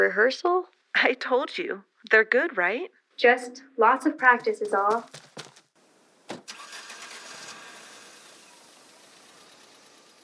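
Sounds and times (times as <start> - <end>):
speech: 0.0 - 5.5
car engine cranking, catching and idling: 6.3 - 10.2.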